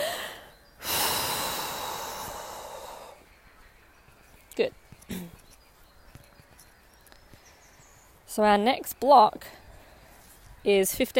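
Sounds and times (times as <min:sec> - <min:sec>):
long deep breath pushed out slowly: 0:00.0 - 0:03.2
speech: 0:04.6 - 0:05.4, 0:08.4 - 0:09.6, 0:10.6 - 0:11.1.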